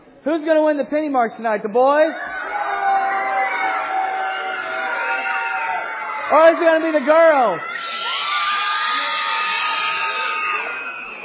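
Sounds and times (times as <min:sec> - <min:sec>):
speech: 0:00.2 - 0:02.4, 0:06.3 - 0:07.7
crowd of children screaming cheer: 0:02.1 - 0:11.2.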